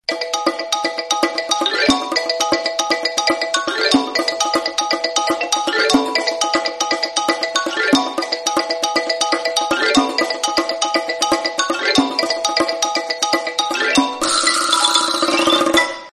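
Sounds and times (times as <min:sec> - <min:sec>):
Samsung Galaxy S22 ringtone: 0:00.1 - 0:16.1.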